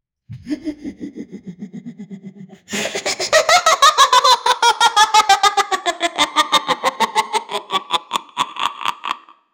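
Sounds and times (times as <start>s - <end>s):
scary clown laugh: 0.3s - 9.5s.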